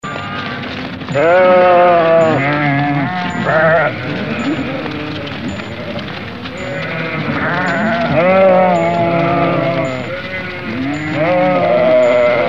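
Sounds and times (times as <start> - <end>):
several sheep bleating in a chorus: 0.0 - 12.4.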